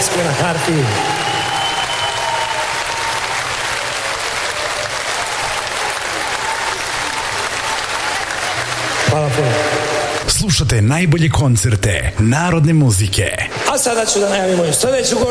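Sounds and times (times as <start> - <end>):
folk music concert audience applauding a harpist: 0.0 - 10.3
speech: 0.2 - 1.3, 10.4 - 15.2.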